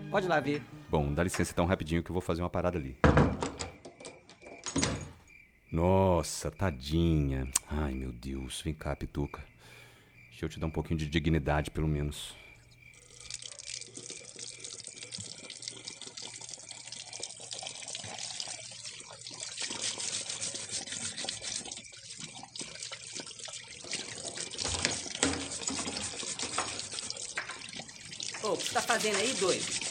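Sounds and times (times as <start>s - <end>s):
speech: 0.1s - 3.3s, 5.7s - 9.5s, 10.4s - 12.4s, 29.0s - 29.8s
water running from a tap while washing a pet: 12.8s - 29.8s.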